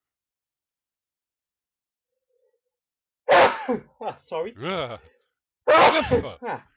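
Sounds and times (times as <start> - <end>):
loud sneeze with breathy intake: 3.3 - 3.9, 5.7 - 6.6
speech: 3.7 - 6.7
short trailing vocal sound: 4.6 - 5.1, 5.9 - 6.4.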